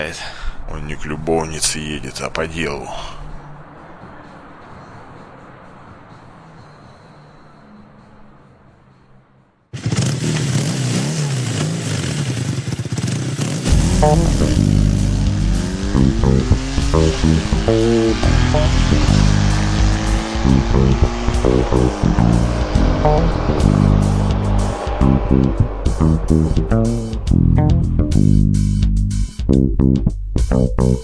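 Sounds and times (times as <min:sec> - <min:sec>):
speech: 0:00.0 - 0:03.2, 0:20.8 - 0:24.4, 0:25.0 - 0:28.8, 0:29.5 - 0:31.0
motorcycle engine revving as it speeds through dark fields: 0:09.7 - 0:29.4.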